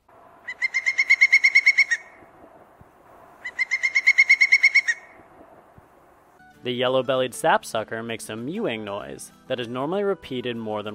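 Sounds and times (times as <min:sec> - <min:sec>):
pileated woodpecker loud ringing piping calls: 0:00.4 - 0:02.2, 0:03.4 - 0:05.5
speech: 0:06.6 - 0:10.9.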